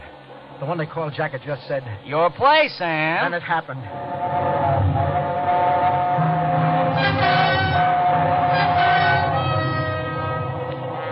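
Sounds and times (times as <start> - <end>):
train roaring through a tunnel: 0.0 - 11.1
speech: 0.6 - 5.2
droning horn-like tone: 3.8 - 11.1.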